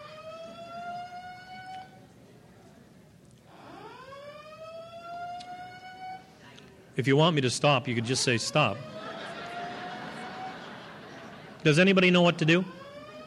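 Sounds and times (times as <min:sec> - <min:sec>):
loud wailing siren: 0:00.0 - 0:01.9, 0:03.5 - 0:06.3, 0:08.0 - 0:10.7, 0:12.1 - 0:13.2
speech: 0:07.0 - 0:08.9, 0:11.6 - 0:12.8
laughter: 0:07.8 - 0:13.2.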